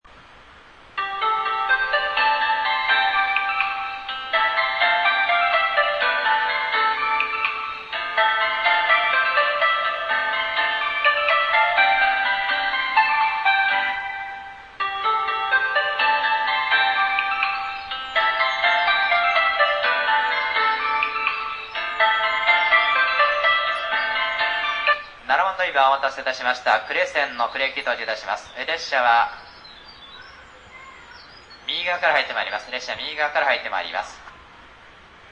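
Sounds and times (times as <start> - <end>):
platform 7 train arrival melody at Hiroshima Station on the Sanyo Line: 0.1 - 35.3
station announcement at Hiroshima Station: 0.2 - 35.2.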